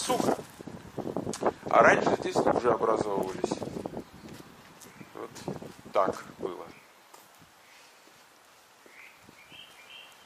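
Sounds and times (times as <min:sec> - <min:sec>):
speech: 0:00.0 - 0:00.4, 0:01.8 - 0:03.8, 0:05.3 - 0:06.8
birds chirping outdoors: 0:03.8 - 0:08.1, 0:08.7 - 0:10.2.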